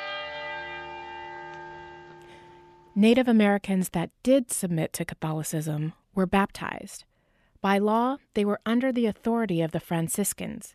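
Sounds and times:
church bells ringing: 0.0s - 3.0s
speech: 3.0s - 10.7s.

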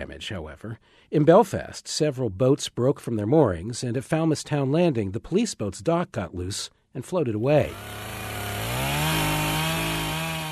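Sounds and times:
speech: 0.0s - 8.2s
chainsaw cutting wood to clear roads after storm damage: 7.6s - 10.5s.

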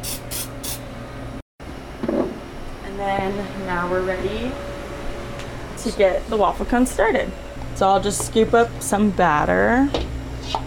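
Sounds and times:
nonstick cooking spray hissing onto waffle cone irons: 0.0s - 0.8s
low hum: 0.0s - 10.6s
speech: 3.0s - 4.7s, 5.8s - 10.1s.

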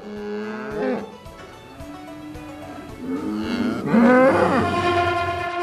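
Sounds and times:
several cows mooing: 0.0s - 1.2s, 2.2s - 5.5s.

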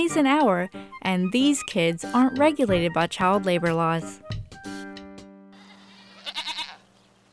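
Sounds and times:
speech: 0.0s - 4.3s
goats bleating: 5.6s - 6.9s.

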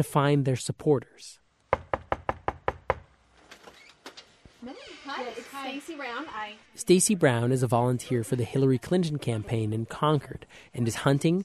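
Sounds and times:
speech: 0.0s - 1.4s, 4.6s - 11.4s
loud knocking on a front door: 1.7s - 3.1s
faint creak: 3.4s - 6.7s.

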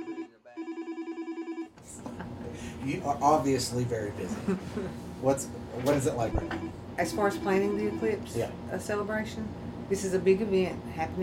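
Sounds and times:
office telephone trilling electronic ring: 0.0s - 1.7s, 6.3s - 8.3s
speech: 2.8s - 11.2s.

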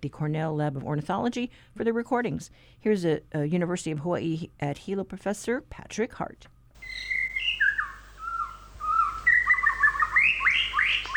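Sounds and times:
speech: 0.0s - 7.2s
white-rumped shama singing: 6.8s - 11.1s.

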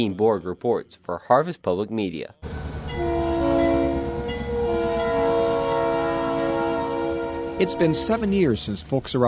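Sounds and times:
speech: 0.0s - 2.6s, 7.6s - 9.2s
Iowa Northern locomotive horn blast: 2.4s - 8.7s
deep rumble of rolling rail cars switched by an Iowa Northern locomotive: 2.4s - 9.2s.

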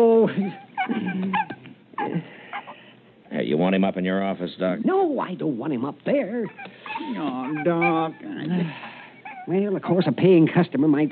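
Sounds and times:
speech: 0.0s - 0.7s, 3.7s - 8.9s, 9.5s - 11.1s
sick dog whimpering: 0.2s - 3.0s, 6.3s - 10.1s.

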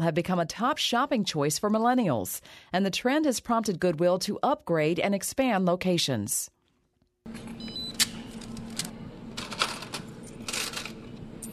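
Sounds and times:
speech: 0.0s - 6.6s, 7.2s - 7.7s
steady low hum of busy store noise: 7.2s - 11.5s
cash register drawer clattering: 7.4s - 11.5s
short cash register beeps: 7.6s - 8.0s
coins clinking at a cash register: 8.1s - 11.5s.

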